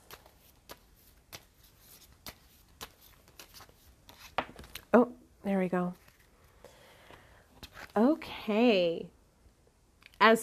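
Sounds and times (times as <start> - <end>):
tarot cards being shuffled: 0.0 - 4.9, 5.9 - 6.5, 7.6 - 8.1
speech: 4.9 - 6.0, 8.0 - 9.2, 10.2 - 10.4.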